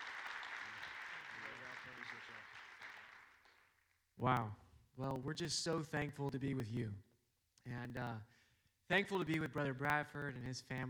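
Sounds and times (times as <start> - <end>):
audience clapping hands in welcome: 0.0 - 3.8
speech: 1.8 - 2.7, 4.2 - 10.8.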